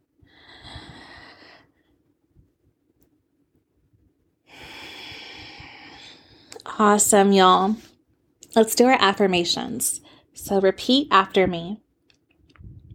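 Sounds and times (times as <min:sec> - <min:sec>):
long deep drawn breath: 0:00.2 - 0:01.9, 0:04.5 - 0:06.6
speech: 0:06.8 - 0:07.9, 0:08.6 - 0:11.8.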